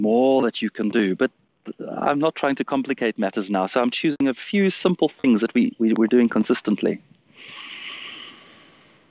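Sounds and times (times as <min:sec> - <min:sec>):
speech: 0:00.0 - 0:07.6
hissing breath pushed out through the nose during a pranic breathing exercise: 0:07.3 - 0:09.1.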